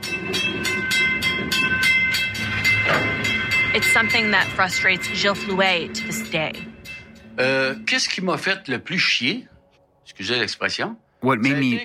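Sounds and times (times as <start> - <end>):
wheels clattering over rail joints: 0.0 - 5.3
train rolling past on the tracks: 0.0 - 7.9
sustained metallic hum of a passing train: 0.0 - 8.9
speech: 3.8 - 6.7, 7.4 - 9.5, 10.2 - 11.8.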